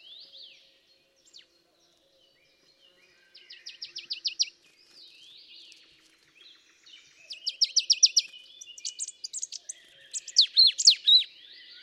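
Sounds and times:
Poecile palustris marsh tit calls: 0:07.4 - 0:11.3.

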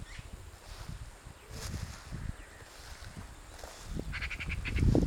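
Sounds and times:
Eurasian magpie Pica pica chattering with harsh dry notes: 0:04.1 - 0:04.9.

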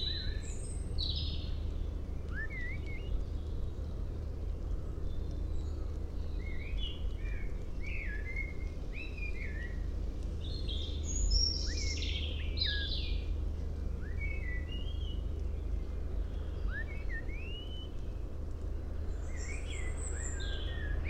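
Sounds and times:
common blackbird singing: 0:00.0 - 0:03.8, 0:05.0 - 0:09.8, 0:10.4 - 0:13.3, 0:14.0 - 0:15.6, 0:16.3 - 0:18.2, 0:19.2 - 0:21.0
steady low-frequency noise: 0:00.0 - 0:21.0.

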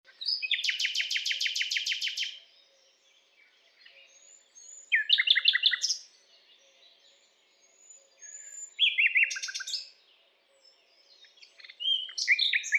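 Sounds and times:
Common nightingale Luscinia megarhynchos singing: 0:00.1 - 0:12.7.

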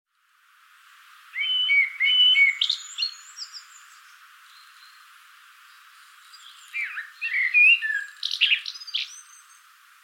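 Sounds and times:
Common blackbird Turdus merula singing: 0:01.4 - 0:05.0, 0:05.7 - 0:09.6.

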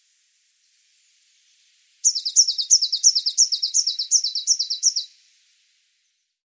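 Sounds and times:
Eurasian blue tit Cyanistes caeruleus calling: 0:02.0 - 0:05.2.

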